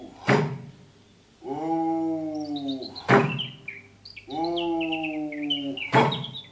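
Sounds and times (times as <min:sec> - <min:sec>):
birds chirping and trilling in a forest: 0:00.0 - 0:06.5
sharp knocking thuds: 0:00.2 - 0:00.8, 0:03.1 - 0:03.6, 0:05.9 - 0:06.4.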